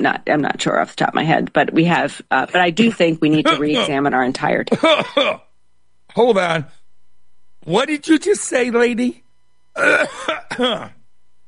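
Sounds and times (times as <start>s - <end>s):
speech: 0.0s - 5.5s, 6.1s - 6.8s, 7.6s - 9.2s, 9.8s - 11.0s
person clearing throat: 4.7s - 5.5s, 9.8s - 11.0s.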